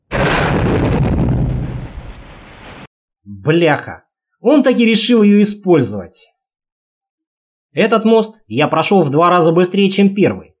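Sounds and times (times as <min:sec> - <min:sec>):
explosion of a bomb dropped from a helicopter: 0:00.0 - 0:02.9
speech: 0:03.4 - 0:06.4, 0:07.7 - 0:10.5.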